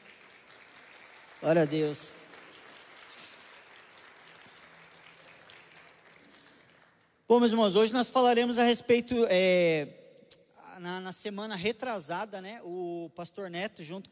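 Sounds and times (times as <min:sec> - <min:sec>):
crowd clapping in a large room: 0:00.0 - 0:07.3
speech: 0:01.4 - 0:02.2, 0:07.3 - 0:10.0, 0:10.8 - 0:14.1.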